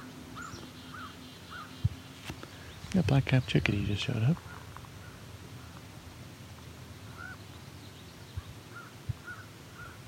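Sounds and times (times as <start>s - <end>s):
low outdoor noise: 0.0s - 10.0s
speech: 3.0s - 4.5s
crow cawing: 7.1s - 7.4s, 8.7s - 10.0s.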